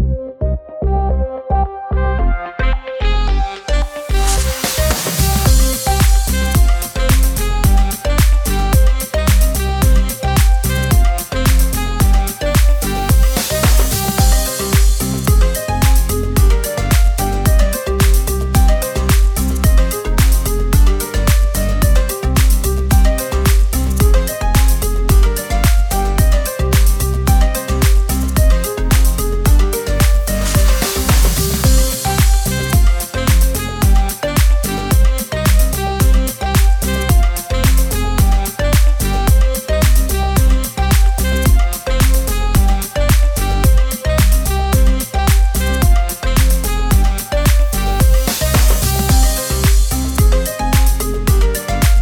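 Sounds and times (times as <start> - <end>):
funny dance house background music for video: 0.2 - 51.9.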